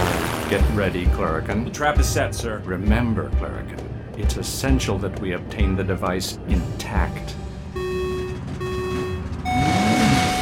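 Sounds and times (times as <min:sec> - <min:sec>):
speech: 0:00.5 - 0:07.4
truck engines roaring while racing down a raceway: 0:07.8 - 0:10.4.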